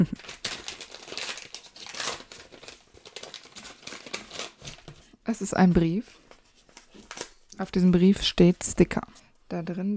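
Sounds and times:
speech: 0.0s - 0.4s, 5.3s - 6.2s, 7.6s - 9.9s
gift-wrapped paper crinkling while being unwrapped: 0.1s - 5.1s, 6.2s - 8.6s
paper tearing: 0.2s - 4.8s.

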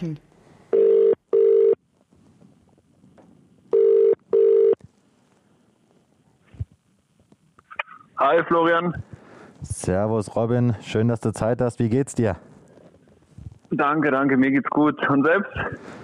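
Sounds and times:
speech: 0.0s - 0.3s, 8.2s - 12.5s, 13.7s - 16.0s
quiet phone line noise: 0.0s - 16.0s
outgoing phone call ringing tone: 0.7s - 1.8s, 3.7s - 4.8s.

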